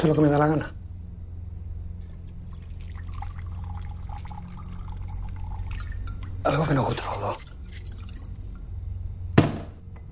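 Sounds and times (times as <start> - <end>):
speech: 0.0 - 0.8, 6.4 - 7.5
low steady hum: 0.0 - 10.1
vodka splashing into two drinking glasses: 2.4 - 8.6.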